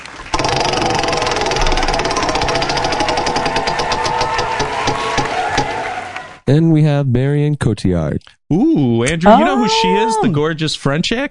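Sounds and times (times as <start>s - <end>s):
prize wheel spinning with rapid clicks: 0.4s - 5.0s
speech: 6.5s - 11.2s.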